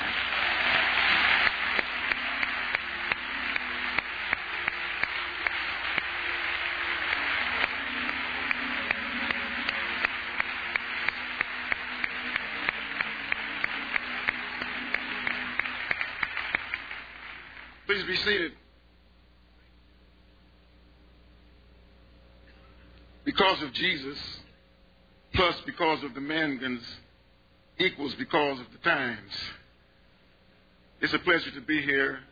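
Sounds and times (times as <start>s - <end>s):
audience applauding with many hands clapping: 0.0s - 18.3s
speech: 18.0s - 18.6s, 23.3s - 24.4s, 25.4s - 27.0s, 27.8s - 29.6s, 31.0s - 32.3s.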